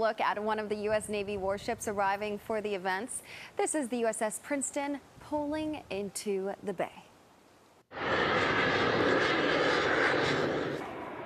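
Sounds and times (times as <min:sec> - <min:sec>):
speech: 0:00.0 - 0:07.0
Navy flight demonstration jets flying overhead: 0:07.9 - 0:11.2.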